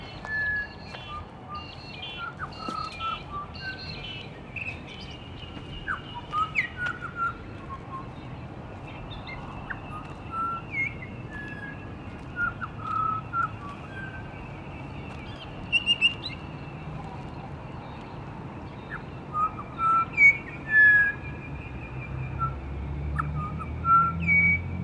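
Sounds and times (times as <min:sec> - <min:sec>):
pied butcherbird singing and mimicking other birds' calls: 0:00.2 - 0:08.2, 0:09.0 - 0:16.4, 0:18.8 - 0:21.4, 0:23.2 - 0:24.7.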